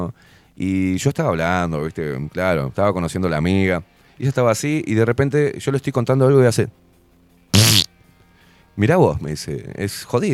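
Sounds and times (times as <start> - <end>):
speech: 0.0 - 6.9, 8.8 - 10.3
person blowing a raspberry imitating a fart: 7.6 - 7.9.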